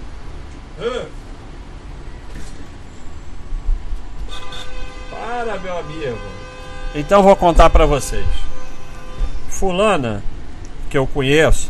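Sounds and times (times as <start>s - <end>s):
steady low rumble of traffic or rail noise: 0.0s - 11.6s
speech: 0.8s - 1.2s, 5.4s - 8.5s, 9.6s - 10.3s, 10.9s - 11.6s
loud tonal horn blasts: 4.2s - 10.2s.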